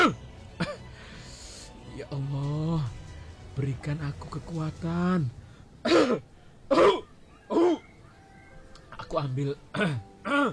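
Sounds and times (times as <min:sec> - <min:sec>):
speech: 0:02.1 - 0:02.6, 0:03.6 - 0:06.9, 0:09.2 - 0:10.5
man with an itchy throat clearing throat and coughing: 0:05.8 - 0:07.7.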